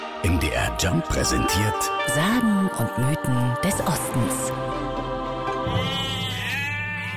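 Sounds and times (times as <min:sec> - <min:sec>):
speech: 0:00.2 - 0:04.7
sheep bleating in a pasture: 0:05.7 - 0:07.1.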